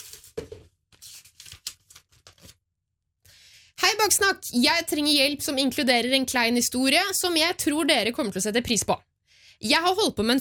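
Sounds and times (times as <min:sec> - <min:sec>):
paper note being drawn and unfolded, rustling and crinkling: 0:00.0 - 0:02.6
speech: 0:04.0 - 0:10.3.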